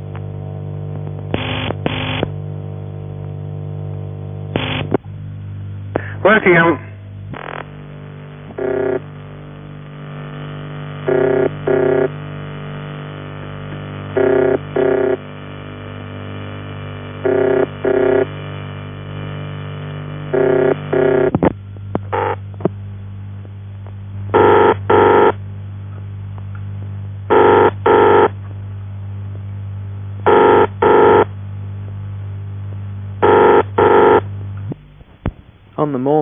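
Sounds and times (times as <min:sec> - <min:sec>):
steady low electrical hum: 0:00.0 - 0:36.2
speech: 0:06.3 - 0:06.9, 0:11.1 - 0:11.4
ringing tone from the ringing machine of a UAX-7 telephone exchange: 0:08.6 - 0:09.0, 0:11.0 - 0:12.1, 0:14.2 - 0:15.2, 0:17.2 - 0:18.3, 0:20.3 - 0:21.3, 0:24.4 - 0:25.3, 0:27.3 - 0:28.3, 0:30.3 - 0:31.2, 0:33.2 - 0:34.2.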